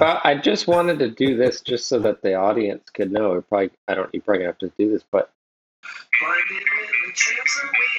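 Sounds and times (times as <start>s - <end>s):
speech: 0.0s - 7.9s
song with singing and guitar played through a small phone speaker: 6.1s - 7.9s.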